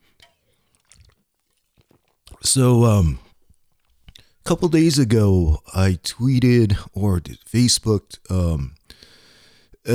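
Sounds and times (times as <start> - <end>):
person sipping a drink: 0.1 - 2.4
speech: 2.4 - 3.2, 4.5 - 9.1.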